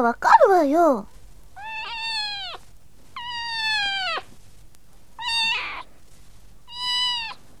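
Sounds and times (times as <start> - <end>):
speech: 0.0 - 1.1
cat meowing with long drawn-out harmonic cries: 1.6 - 4.3, 5.2 - 5.9, 6.7 - 7.5.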